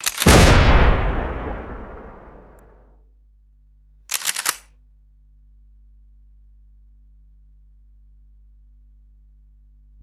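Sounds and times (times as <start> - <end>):
mechanical click: 0.0 - 0.4, 4.1 - 4.6
heavy boom of explosions: 0.2 - 2.8.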